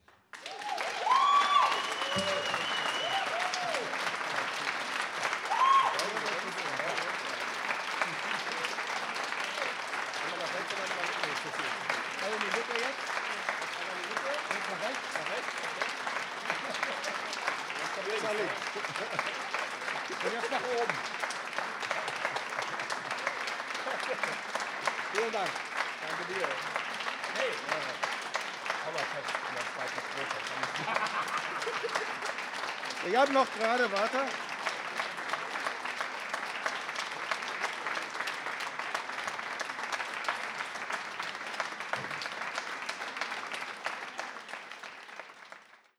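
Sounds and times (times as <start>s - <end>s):
applause: 0.0s - 45.9s
laughter: 7.8s - 9.2s, 10.2s - 12.7s, 13.4s - 21.0s, 21.7s - 25.3s, 30.0s - 32.5s.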